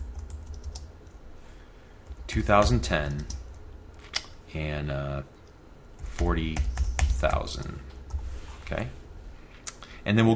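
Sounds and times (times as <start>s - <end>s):
typing on a computer keyboard while entering values into code: 0.0s - 0.9s
speech: 2.3s - 3.4s, 4.5s - 5.4s, 6.2s - 7.9s, 8.7s - 9.0s, 10.0s - 10.3s.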